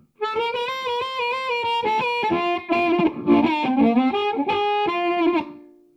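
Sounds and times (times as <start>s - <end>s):
clean electric guitar through a Champ amp model on a multi-effects device with room reverb: 0.0s - 5.9s.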